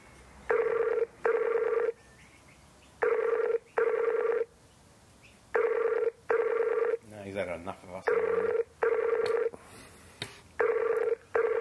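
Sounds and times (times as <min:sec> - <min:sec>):
telephone ringback tone over a call line: 0:00.5 - 0:02.0, 0:03.0 - 0:04.5, 0:05.6 - 0:07.0, 0:08.1 - 0:09.5, 0:10.6 - 0:11.6
speech: 0:07.4 - 0:08.7.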